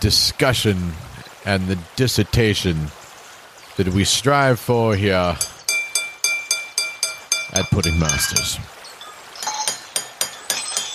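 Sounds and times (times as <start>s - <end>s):
speech: 0.0s - 3.0s, 3.8s - 5.5s, 7.5s - 8.8s
bowls clinking together: 5.4s - 10.9s.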